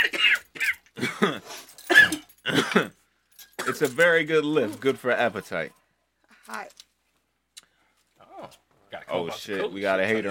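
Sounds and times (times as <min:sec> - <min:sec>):
coughing fit: 0:00.0 - 0:04.0
speech: 0:01.1 - 0:01.6, 0:02.8 - 0:03.0, 0:03.8 - 0:05.8, 0:09.1 - 0:10.2.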